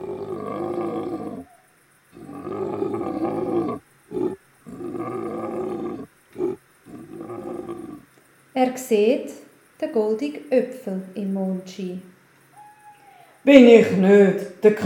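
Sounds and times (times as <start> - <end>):
lion roaring: 0.0 - 8.1
speech: 8.6 - 12.1, 13.4 - 14.8.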